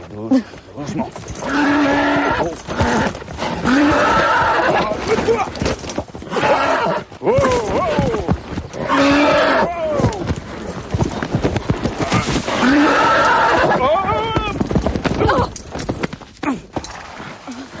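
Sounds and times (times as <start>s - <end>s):
horse hooves clopping: 0.0s - 17.7s
speech: 0.1s - 1.8s
horse whinnying: 1.3s - 10.3s, 11.9s - 15.6s.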